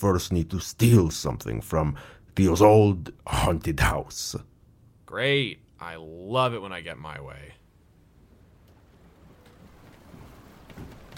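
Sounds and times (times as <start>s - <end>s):
speech: 0.0s - 4.5s, 5.1s - 7.6s
boat moving through open water in sea fog: 7.3s - 11.1s
swells splashing at sea: 7.9s - 11.1s.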